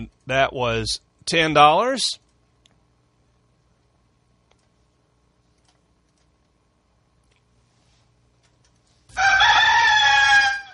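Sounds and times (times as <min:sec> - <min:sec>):
speech: 0:00.0 - 0:02.2
white rooster crowing: 0:09.1 - 0:10.7.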